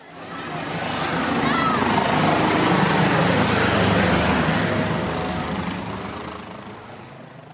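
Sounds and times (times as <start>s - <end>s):
air rescue helicopter rotor roar landing at a rescue base: 0.0s - 7.5s.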